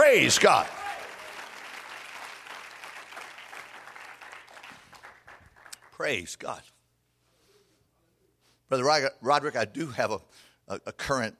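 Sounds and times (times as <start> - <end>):
crowd clapping in sustained applause: 0.0 - 6.0
speech: 0.1 - 0.8, 6.0 - 6.7, 8.7 - 11.3.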